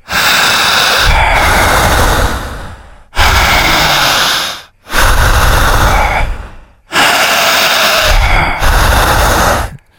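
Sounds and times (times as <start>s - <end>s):
forceful panting breaths of a breathing exercise: 0.0s - 9.9s.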